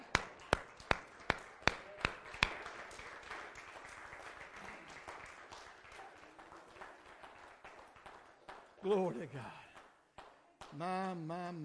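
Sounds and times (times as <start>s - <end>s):
crisp hand claps: 0.0s - 8.8s
audience clapping together: 0.0s - 11.6s
speech: 8.8s - 9.6s, 10.8s - 11.6s.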